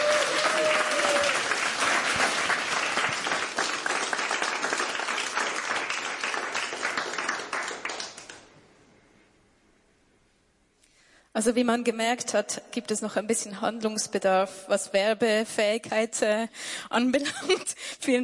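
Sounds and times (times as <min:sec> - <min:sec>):
live audience applause for a band in a radio studio: 0:00.0 - 0:08.5
speech: 0:11.4 - 0:18.2.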